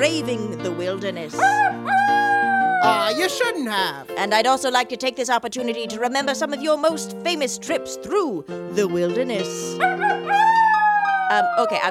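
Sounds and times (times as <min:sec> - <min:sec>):
speech: 0:00.0 - 0:10.2, 0:11.3 - 0:11.8
pet wolf howling: 0:01.4 - 0:03.4, 0:09.8 - 0:11.8.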